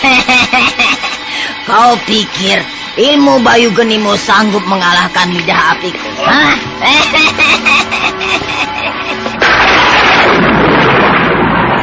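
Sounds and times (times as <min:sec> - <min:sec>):
laughter: 0:00.0 - 0:01.4, 0:06.8 - 0:09.4
speech: 0:01.7 - 0:07.8
loud thunderclap rumbling: 0:09.4 - 0:11.8.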